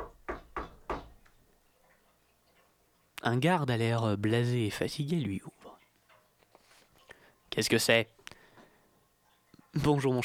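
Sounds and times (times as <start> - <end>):
firm knocking on the wooden door of a palace: 0.0 - 1.2
speech: 3.2 - 5.6, 7.6 - 8.2, 9.8 - 10.2.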